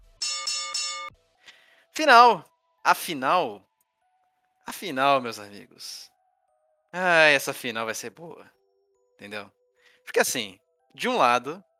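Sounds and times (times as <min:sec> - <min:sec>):
bright ringing bell sound effect: 0:00.1 - 0:01.1, 0:11.0 - 0:11.5
speech: 0:02.0 - 0:03.7, 0:04.7 - 0:06.1, 0:06.9 - 0:08.6, 0:09.2 - 0:11.7.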